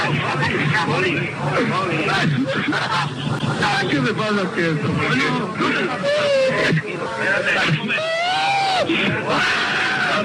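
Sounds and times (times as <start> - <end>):
speech: 0.8 - 8.2
laughter: 1.5 - 4.2, 5.0 - 10.2
man sobbing and wailing from a nervous attack: 6.0 - 6.7, 7.9 - 10.2.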